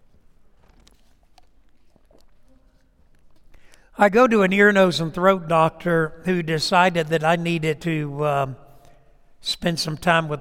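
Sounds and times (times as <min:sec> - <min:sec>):
plastic cap of a water bottle twisting open: 0:00.6 - 0:03.8
speech: 0:04.0 - 0:08.6, 0:09.4 - 0:10.3.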